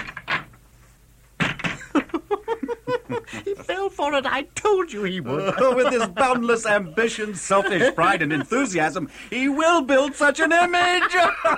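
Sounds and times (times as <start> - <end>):
heavy door creaking open: 0.0 - 0.6
laughter: 1.8 - 4.0, 5.0 - 11.5
speech: 3.1 - 11.5.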